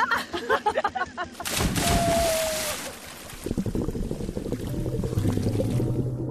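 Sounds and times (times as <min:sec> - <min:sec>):
laughter: 0:00.0 - 0:01.6
churning and sloshing sea waves: 0:01.4 - 0:06.2
people jumping and splashing into the sea: 0:01.4 - 0:06.2.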